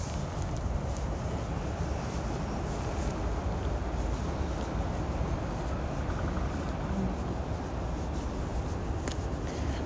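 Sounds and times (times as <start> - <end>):
wind-like rush of traffic at a busy junction: 0.0 - 9.8.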